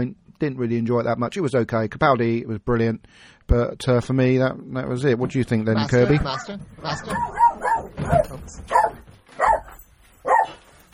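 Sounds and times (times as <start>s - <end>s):
speech: 0.0s - 7.4s, 8.0s - 8.9s
dog barking: 6.1s - 10.6s.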